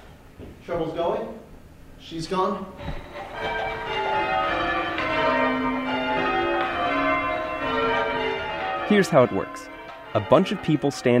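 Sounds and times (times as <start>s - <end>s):
speech: 0.7s - 3.6s, 8.9s - 11.1s
tower bells rung in sequence by ringers: 2.8s - 11.1s.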